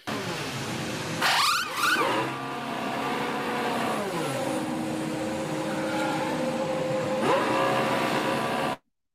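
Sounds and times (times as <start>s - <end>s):
loud car-like noise: 0.0s - 8.8s
steady shifting mechanical whine: 0.5s - 8.8s
pit wheel gun shrieking while stripping a wheel nut during a race: 1.2s - 2.4s, 5.6s - 7.7s.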